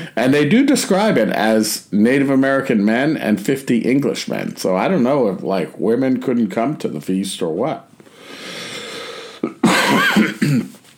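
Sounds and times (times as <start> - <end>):
speech: 0.1 - 7.9
person coughing: 9.4 - 10.8.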